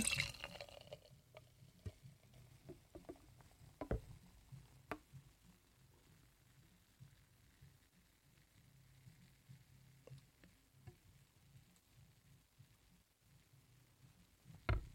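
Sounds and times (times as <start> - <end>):
beer foam fizzing: 0.0 - 1.0
beer pouring from a can: 0.0 - 4.1
small pops and drips of beer foam: 0.0 - 4.2, 9.5 - 11.3.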